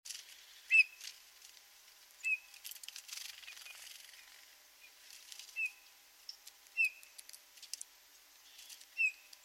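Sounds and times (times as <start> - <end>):
Eurasian bullfinch giving soft short piping whistles: 0.7 - 1.0, 2.2 - 2.5, 5.6 - 5.9, 6.8 - 7.1, 8.5 - 9.4.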